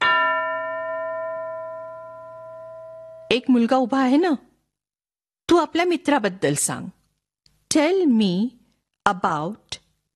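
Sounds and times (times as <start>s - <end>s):
school bell struck once: 0.0s - 3.4s
speech: 3.3s - 4.5s, 5.6s - 7.0s, 7.7s - 9.7s.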